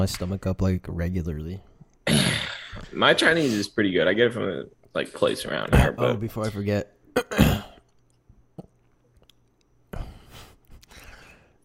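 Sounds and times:
speech: 0.0 - 2.2, 2.8 - 7.5
person coughing: 2.0 - 2.8, 7.2 - 7.9
throat clearing: 2.0 - 2.8, 7.2 - 7.9.

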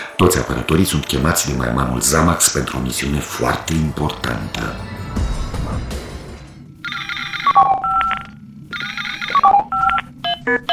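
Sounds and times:
speech: 0.2 - 6.0
electronic incoming-call ring with warbling tones: 6.8 - 10.7.

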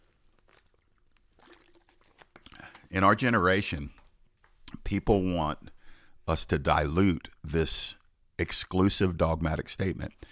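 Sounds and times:
small wet slurps: 0.0 - 2.9
person sipping water: 0.0 - 3.0
speech: 2.9 - 4.0, 4.9 - 10.3.

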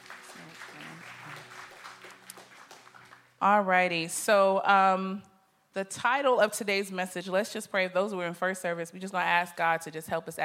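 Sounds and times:
congregation applauding: 0.0 - 3.4
speech: 3.4 - 10.4.

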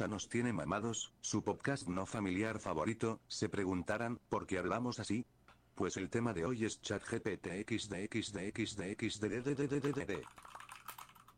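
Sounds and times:
speech: 0.0 - 10.6
typing on a computer keyboard: 9.8 - 11.3.

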